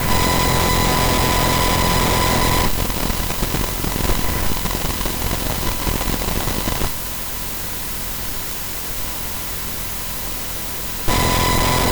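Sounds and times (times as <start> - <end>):
CPU noise at various clock speeds: 0.0 - 7.0, 11.1 - 11.9.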